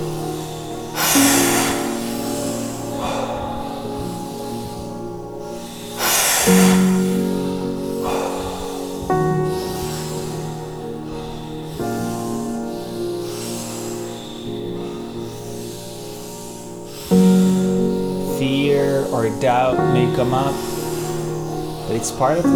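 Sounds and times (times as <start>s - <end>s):
slow deep breathing: 0.0s - 22.5s
steady soft musical drone: 0.0s - 22.5s
speech: 20.2s - 20.7s, 21.9s - 22.5s.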